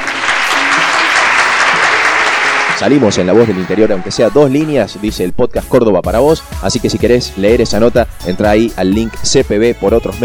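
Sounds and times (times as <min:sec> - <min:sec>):
audience applause: 0:00.0 - 0:04.2
speech: 0:02.8 - 0:10.2.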